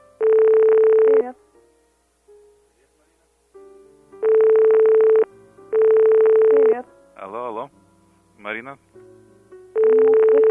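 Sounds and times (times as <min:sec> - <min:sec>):
telephone ringing with an incoming call: 0:00.2 - 0:01.3, 0:04.2 - 0:06.8, 0:09.8 - 0:10.4
speech: 0:08.6 - 0:09.1.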